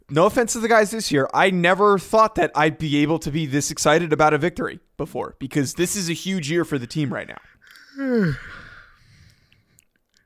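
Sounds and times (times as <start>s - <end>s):
speech: 0.1s - 8.6s
person yawning: 7.7s - 9.3s.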